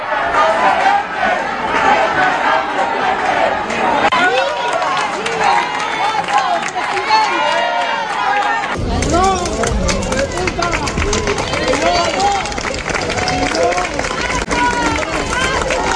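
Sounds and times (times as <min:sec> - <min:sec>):
dense crowd cheering, shouting and insulting a politician at a seafood festival: 0:00.0 - 0:15.9
dense crowd applauding at a seafood festival: 0:03.6 - 0:15.9.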